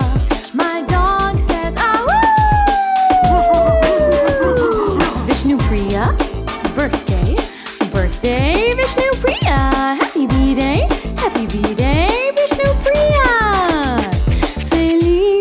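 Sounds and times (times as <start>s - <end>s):
bouncy steady-beat backing track: 0.0s - 15.2s
dog howling: 2.1s - 5.2s.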